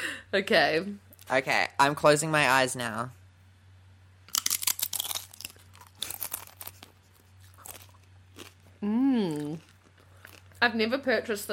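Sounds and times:
speech: 0.3 - 3.2, 8.8 - 9.7, 10.6 - 11.5
crunchy chip being bitten and chewed: 4.3 - 10.6.

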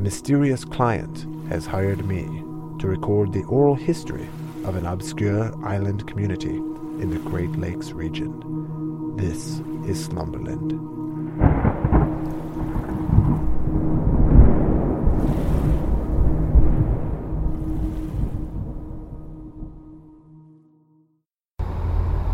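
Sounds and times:
rushing wash of water: 0.0 - 8.4, 9.1 - 19.6
speech: 0.0 - 11.5
wind: 0.0 - 19.9, 21.6 - 22.3
ferry boat engine rumbling while crossing a lake: 21.6 - 22.3.

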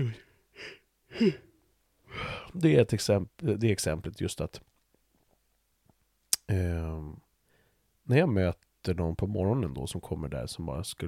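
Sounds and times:
person yawning: 0.0 - 1.5
speech: 0.0 - 1.5, 2.5 - 4.7, 6.5 - 7.2, 8.1 - 11.0.

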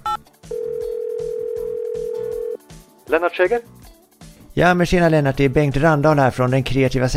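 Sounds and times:
rhythmic music: 0.0 - 7.1
telephone ringback tone from an outgoing call: 0.1 - 2.6
speech: 3.1 - 3.8, 4.6 - 7.1.

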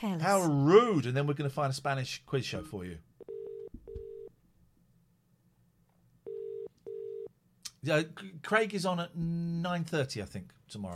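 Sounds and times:
speech: 0.0 - 3.1, 7.8 - 10.9
telephone call ringing through with double-burst ring tones: 3.2 - 4.3, 6.2 - 7.3.

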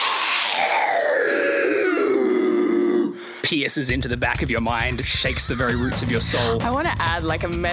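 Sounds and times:
unearthly screech from the depths of a pit: 0.0 - 3.1
speech: 3.5 - 7.7
laughter: 4.8 - 6.8.

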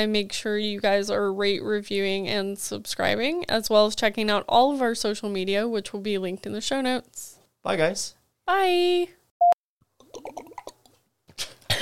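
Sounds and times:
speech: 0.0 - 9.2
person gulping water: 10.0 - 11.7.

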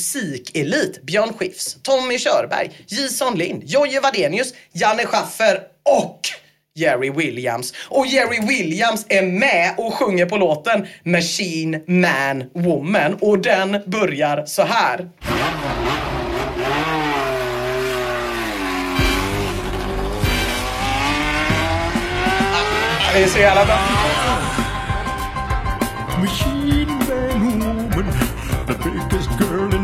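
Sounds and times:
speech: 0.0 - 15.8, 23.2 - 24.0, 26.2 - 27.0
racing car tires squealing: 15.2 - 26.0
old McLaren racing car roaring past: 15.2 - 26.1
music with a steady beat: 19.0 - 29.8.

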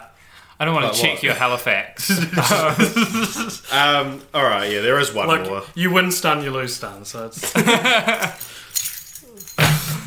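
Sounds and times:
speech: 0.6 - 8.9
laughter: 2.0 - 3.7, 7.4 - 8.5
faint metallic jingle of keys: 8.1 - 9.7
keys dropping onto a hard tabletop: 8.1 - 9.7.

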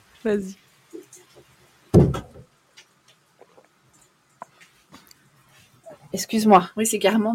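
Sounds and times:
speech: 0.2 - 0.6, 6.1 - 7.3
window pushed shut with a thud and a brief rattle: 1.9 - 2.4.

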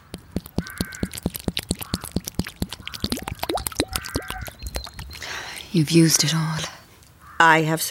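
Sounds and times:
water pouring from a container: 0.0 - 5.4
crows cawing: 0.6 - 4.6, 7.2 - 7.5
speech: 5.8 - 6.8, 7.4 - 7.8.

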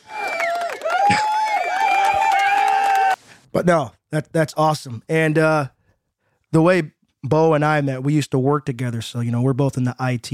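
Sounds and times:
canned crowd applause and cheering from an applause button: 0.0 - 3.3
speech: 3.6 - 5.8, 6.5 - 10.3.

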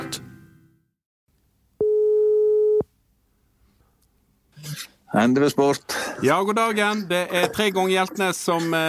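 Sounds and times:
telephone ringing tone on an outgoing call to a sports shop in Voss Norway: 1.8 - 2.9
speech: 5.1 - 8.8.

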